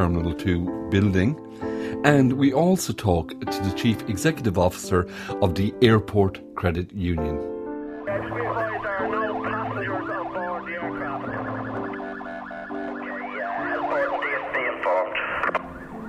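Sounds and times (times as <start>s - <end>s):
speech: 0.0s - 7.5s
fire brigade and ambulance sirens wailing in an emergency response at an airport: 8.0s - 16.0s.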